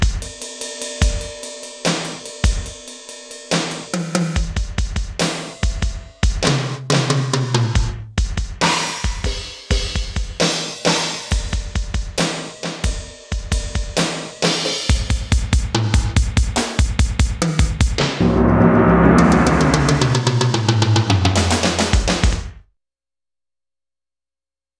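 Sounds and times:
gated drum: 0.2s - 8.1s, 8.7s - 22.2s.

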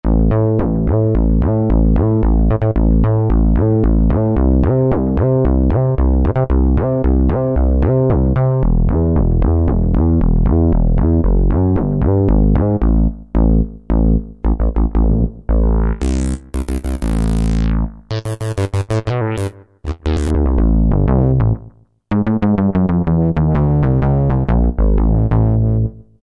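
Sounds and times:
wave bass factory patch on a synthesizer: 0.0s - 26.2s.

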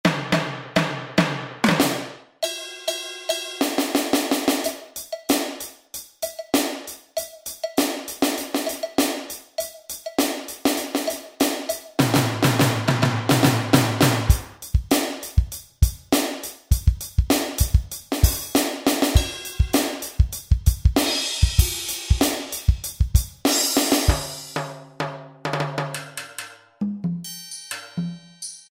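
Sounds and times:
funk drum kit on a Kurzweil K2000 synthesizer: 0.0s - 27.3s.

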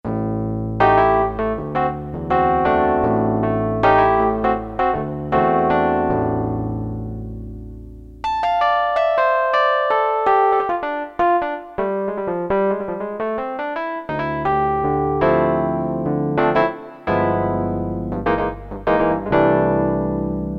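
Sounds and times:
Korg DSS-1 electric piano: 0.1s - 20.5s.

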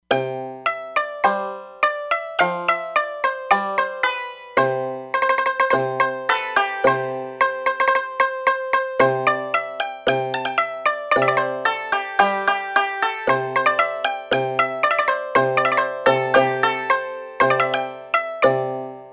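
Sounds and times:
shamisen: 0.0s - 19.1s.

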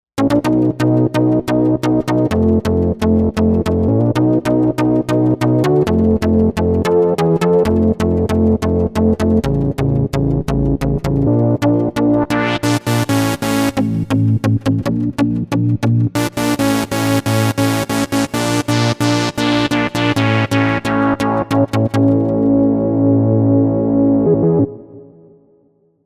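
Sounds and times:
dance chord: 0.2s - 25.5s.

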